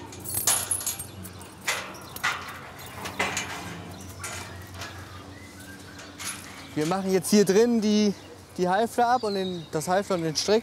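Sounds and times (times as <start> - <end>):
keys jangling while unlocking a gate lock: 0.0 - 2.5
speech: 6.8 - 10.6.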